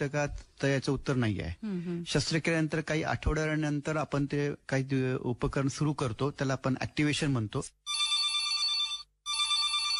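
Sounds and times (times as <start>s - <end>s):
speech: 0.0s - 7.8s
electronic telephone ringing for an incoming call: 7.9s - 9.9s.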